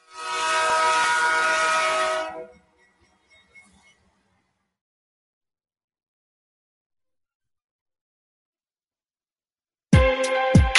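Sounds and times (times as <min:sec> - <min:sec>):
train horn blaring: 0:00.0 - 0:02.8.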